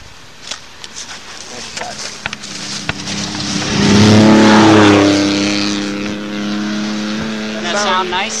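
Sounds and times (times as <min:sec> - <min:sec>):
four-wheel-drive race car revving and roaring past: 0:02.1 - 0:08.3.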